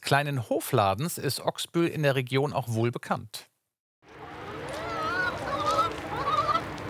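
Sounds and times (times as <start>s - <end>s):
speech: 0.1s - 3.5s
dense flock of chickens clucking and squawking on a farm: 4.2s - 6.8s.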